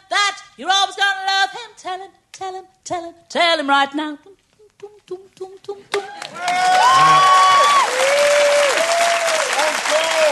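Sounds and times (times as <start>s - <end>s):
speech: 0.6s - 8.0s
person singing: 4.2s - 6.3s
audience applause: 6.0s - 10.3s
audience cheering voices: 6.1s - 10.3s.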